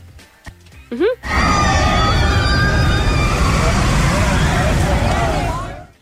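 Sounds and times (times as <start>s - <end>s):
speech: 0.9s - 1.7s
high squealing tones of roller coaster: 1.2s - 6.0s
roller coaster wheels rumbling on track: 1.2s - 6.0s.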